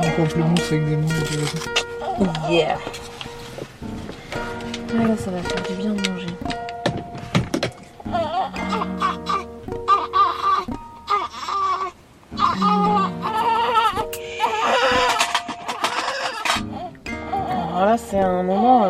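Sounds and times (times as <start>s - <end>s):
speech: 0.2s - 3.1s, 4.9s - 6.6s, 18.0s - 18.8s
newborn baby crying while lying on its mother: 1.8s - 2.6s, 7.9s - 17.8s.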